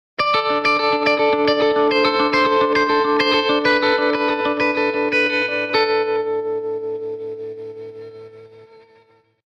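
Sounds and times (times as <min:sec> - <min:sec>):
electric guitar rock arpeggio: 0:00.2 - 0:09.2.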